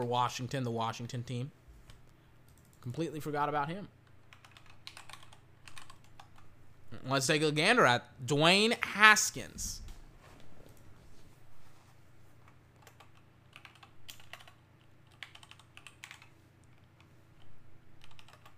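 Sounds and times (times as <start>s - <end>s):
speech: 0.0s - 1.6s, 2.8s - 4.0s, 6.9s - 9.8s
fingers typing on a computer keyboard: 4.1s - 6.5s, 12.7s - 18.5s.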